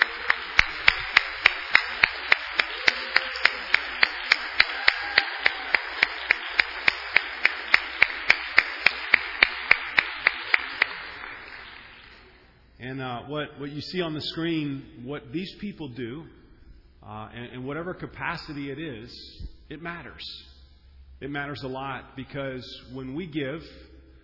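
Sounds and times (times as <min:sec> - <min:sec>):
church audience applauding church volunteers: 0:00.0 - 0:12.2
speech: 0:13.0 - 0:16.4, 0:17.1 - 0:20.5, 0:21.2 - 0:23.9.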